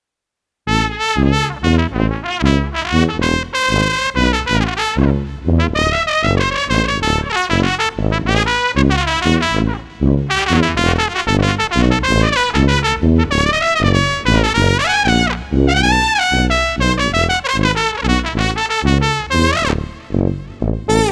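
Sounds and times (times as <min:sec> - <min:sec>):
bouncy street brass music: 0:00.7 - 0:21.1.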